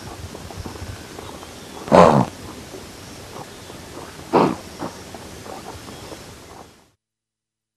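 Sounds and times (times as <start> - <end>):
background noise: 0.0 - 7.0
blue wildebeest nasal grunting: 1.5 - 2.6, 3.4 - 5.7.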